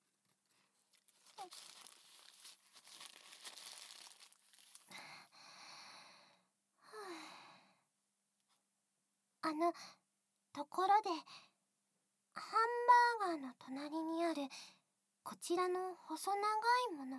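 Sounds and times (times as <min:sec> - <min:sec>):
paper napkin crumpling while wiping: 0:00.8 - 0:05.0
speech: 0:01.4 - 0:01.8, 0:09.5 - 0:10.0, 0:10.6 - 0:11.5, 0:12.4 - 0:17.1.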